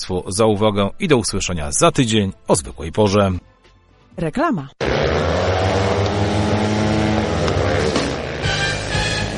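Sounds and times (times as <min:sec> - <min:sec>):
speech: 0:00.0 - 0:03.5, 0:04.2 - 0:05.3
speedway motorcycle engines roaring and revving: 0:04.8 - 0:09.3.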